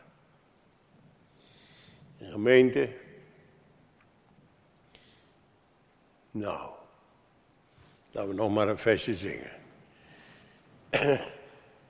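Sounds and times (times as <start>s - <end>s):
speech: 2.2s - 3.0s, 6.4s - 6.8s, 8.2s - 9.6s, 10.9s - 11.3s
short rough throat-clearing cough: 10.9s - 11.7s.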